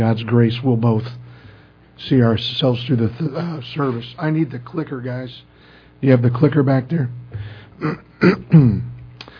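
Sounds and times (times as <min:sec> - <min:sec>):
speech: 0:00.0 - 0:01.2, 0:02.0 - 0:08.9
throat clearing: 0:07.4 - 0:09.0.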